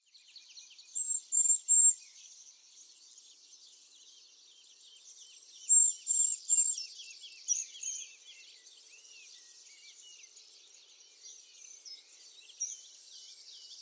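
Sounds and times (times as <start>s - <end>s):
faint background chirping: 0.0s - 13.7s
Eurasian blue tit Cyanistes caeruleus calls: 1.0s - 2.0s.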